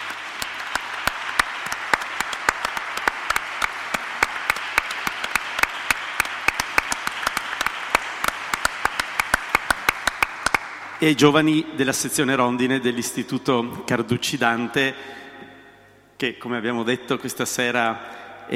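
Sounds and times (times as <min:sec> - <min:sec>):
evening audience applauding a group of young people: 0:00.0 - 0:11.5
speech: 0:11.0 - 0:15.2, 0:16.2 - 0:18.5.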